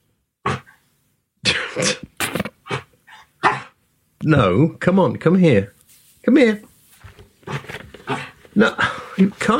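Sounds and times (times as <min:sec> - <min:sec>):
small dog grunting: 0:00.4 - 0:00.8, 0:07.5 - 0:08.4
speech: 0:01.8 - 0:02.1, 0:04.2 - 0:06.7, 0:08.6 - 0:09.5.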